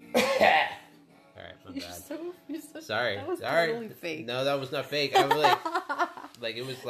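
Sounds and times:
person coughing harshly: 0.1 - 0.8
speech: 1.8 - 5.8, 6.4 - 6.8
laughter: 5.2 - 6.8.

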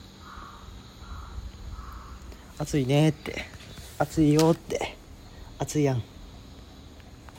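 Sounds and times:
crow cawing: 0.0 - 3.8
low outdoor rumble of wind on a hot day: 0.0 - 6.5
speech: 2.6 - 5.0, 5.6 - 6.1.

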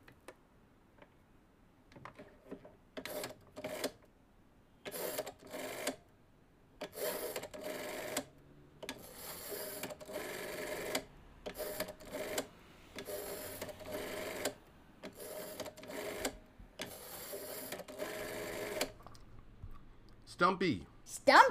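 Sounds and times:
telephone rotary dial whirring and clicking: 1.9 - 4.1, 4.8 - 6.0, 6.8 - 19.3
speech: 20.4 - 21.4.

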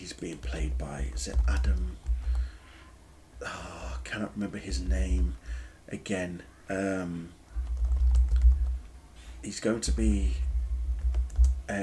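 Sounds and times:
typing on a computer keyboard: 0.0 - 2.5, 7.6 - 8.8, 11.0 - 11.6
speech: 0.1 - 2.1, 3.4 - 7.4, 9.4 - 10.5, 11.7 - 11.8.

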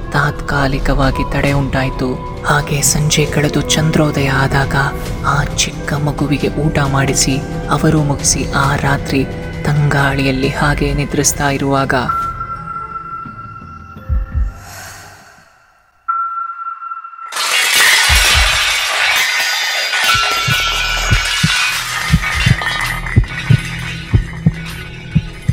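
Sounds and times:
speech: 0.2 - 12.2
slow heartbeat-like throbbing: 14.0 - 14.7, 18.1 - 18.6, 20.1 - 25.5
stacked kitchen vessels suddenly falling and crashing: 17.4 - 25.1.

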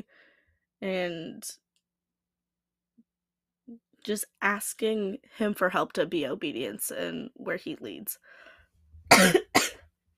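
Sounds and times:
speech: 0.8 - 1.6, 3.7 - 8.5, 9.1 - 9.5
harsh raspy coughs: 9.1 - 9.8.

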